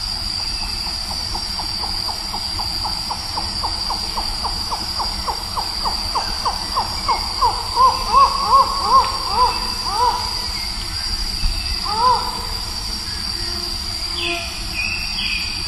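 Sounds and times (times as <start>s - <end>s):
constant high hiss: 0.0s - 15.6s
Collared forest falcon calling: 4.5s - 10.6s, 11.9s - 12.5s.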